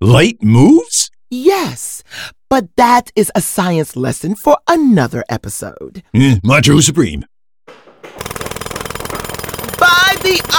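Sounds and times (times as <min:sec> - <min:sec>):
speech: 0:00.0 - 0:08.4
drill hammering into the ground: 0:08.0 - 0:10.5.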